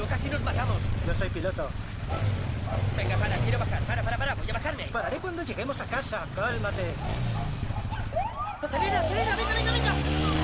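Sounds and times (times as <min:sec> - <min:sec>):
speech: 0:00.0 - 0:07.6, 0:08.6 - 0:10.4
road noise: 0:00.0 - 0:10.4
rumbling police car engine: 0:00.0 - 0:10.4
police car siren wailing during a chase through a favela: 0:07.8 - 0:10.4.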